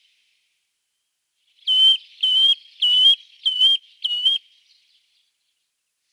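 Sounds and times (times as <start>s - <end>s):
nuthatch singing: 1.7s - 4.4s.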